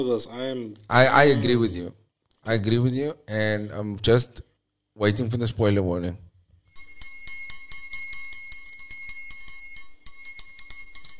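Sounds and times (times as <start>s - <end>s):
speech: 0.0s - 6.2s
ice cream bell ringing: 6.7s - 11.1s.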